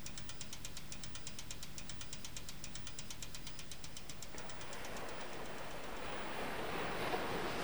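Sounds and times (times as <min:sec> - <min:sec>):
bicycle rear wheel spinning with ticking rattle: 0:00.0 - 0:07.6
ocean waves on a sandy beach in summer sunshine: 0:04.2 - 0:07.6.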